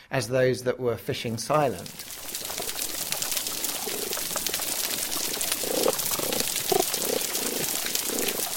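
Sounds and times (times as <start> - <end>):
speech: 0.1 - 2.4
snapping shrimp crackling on a healthy coral reef in the Philippines: 1.8 - 8.5.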